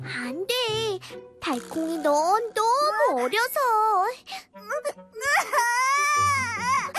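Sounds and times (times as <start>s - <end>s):
speech: 0.3s - 5.7s
child crying: 4.7s - 6.9s.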